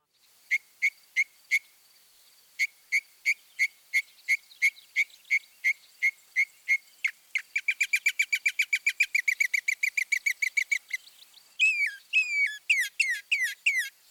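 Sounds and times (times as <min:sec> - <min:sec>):
northern mockingbird singing with mimicry of other species: 0:03.0 - 0:14.0.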